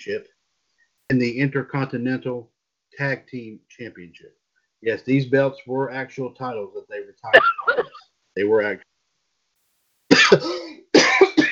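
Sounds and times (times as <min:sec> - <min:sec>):
speech: 0:00.0 - 0:00.4, 0:01.1 - 0:08.9
person coughing harshly: 0:07.3 - 0:08.0, 0:10.1 - 0:11.4.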